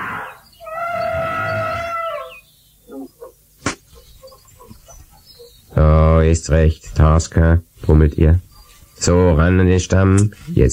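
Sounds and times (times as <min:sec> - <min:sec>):
elephant trumpeting in a jungle: 0:00.0 - 0:04.8
sharp crack: 0:03.6 - 0:03.9
speech: 0:06.2 - 0:10.7.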